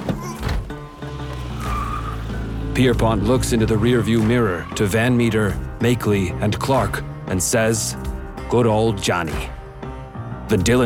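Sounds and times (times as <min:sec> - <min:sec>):
car tires squealing: 0:00.0 - 0:06.0
car engine roaring while driven onto a highway: 0:00.0 - 0:07.0
speech: 0:02.8 - 0:09.6, 0:10.5 - 0:10.8.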